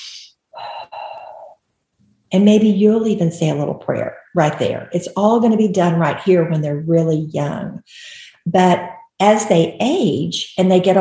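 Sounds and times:
deep breathing in and out: 0:00.0 - 0:01.6
speech: 0:02.3 - 0:10.9.

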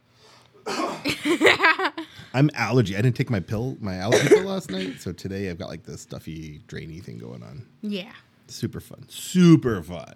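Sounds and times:
person coughing harshly: 0:00.6 - 0:01.4, 0:04.1 - 0:05.0
speech: 0:01.2 - 0:10.1.

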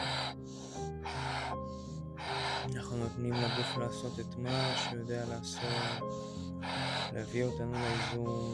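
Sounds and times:
rhythmic breathing at a moderate pace: 0:00.0 - 0:08.5
soft sustained musical drone: 0:00.0 - 0:08.5
speech: 0:02.7 - 0:08.5.

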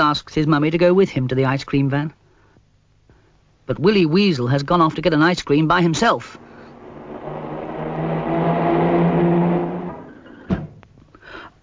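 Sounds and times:
speech: 0:00.1 - 0:02.2, 0:03.7 - 0:06.4
car engine speeding past: 0:05.9 - 0:10.8.

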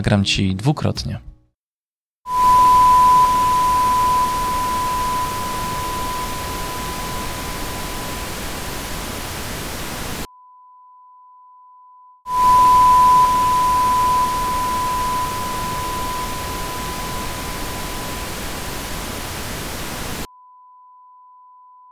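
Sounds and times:
speech: 0:00.0 - 0:01.3
faint pure sine test tone: 0:02.3 - 0:10.3, 0:12.3 - 0:20.3
steady broadband hiss: 0:02.3 - 0:10.3, 0:12.3 - 0:20.3.

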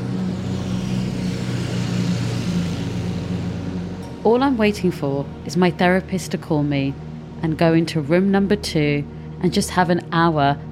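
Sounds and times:
busy road traffic on a high street: 0:00.0 - 0:05.5
speech: 0:04.2 - 0:10.7.

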